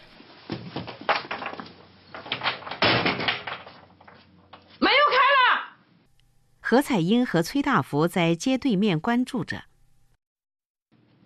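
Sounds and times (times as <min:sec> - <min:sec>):
rattling knocks and bumps: 0:00.5 - 0:04.2
door slamming shut with a heavy thud: 0:02.5 - 0:03.6
speech: 0:06.7 - 0:09.7.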